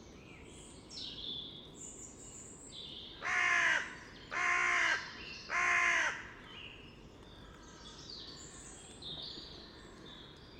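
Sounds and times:
carrion crow Corvus corone harsh caw: 3.2 - 6.3.

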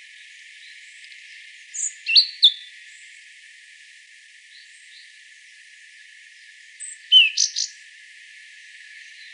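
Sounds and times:
European robin singing: 1.7 - 2.7, 6.8 - 7.8.

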